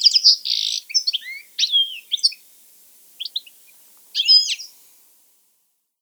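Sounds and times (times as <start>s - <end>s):
European goldfinch Carduelis carduelis twittering calls: 0.0s - 2.5s, 3.2s - 4.8s.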